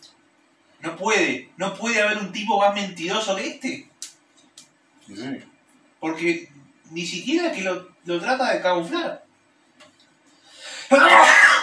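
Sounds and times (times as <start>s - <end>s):
speech: 0.8s - 3.9s, 5.1s - 9.2s, 10.9s - 11.4s
sneeze: 10.9s - 11.6s.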